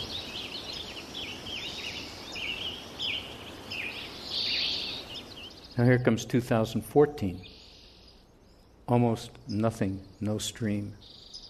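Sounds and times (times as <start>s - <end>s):
sparse spring birdsong: 0.0s - 11.4s
steady hiss of noise: 0.0s - 11.4s
speech: 5.8s - 7.5s, 8.9s - 11.2s.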